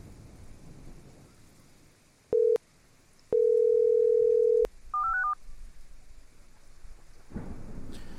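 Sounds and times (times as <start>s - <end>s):
low hiss: 0.0s - 8.1s
telephone dial tone: 2.4s - 2.6s, 3.3s - 5.4s.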